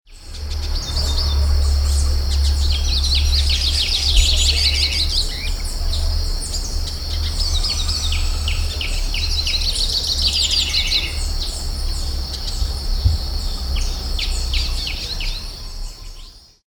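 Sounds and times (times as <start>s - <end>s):
hooded siskin Spinus magellanicus singing: 0.1s - 16.6s.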